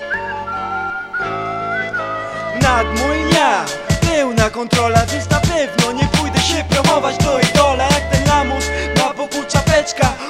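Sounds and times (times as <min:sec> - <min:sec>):
person whistling a wavering mid-high melody: 0:00.0 - 0:10.2
rap beat with layered music: 0:02.5 - 0:10.2
speech: 0:02.7 - 0:08.8.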